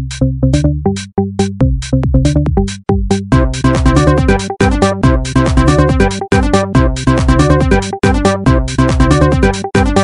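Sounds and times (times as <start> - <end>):
remix ringtone: 0.1 - 10.0.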